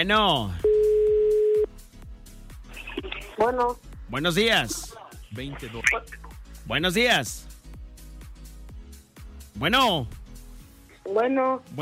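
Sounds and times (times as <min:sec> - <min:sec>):
speech: 0:00.0 - 0:00.7, 0:03.4 - 0:07.5, 0:09.6 - 0:10.2, 0:11.1 - 0:11.7
telephone ringback tone while waiting for a call to be answered: 0:00.6 - 0:01.7.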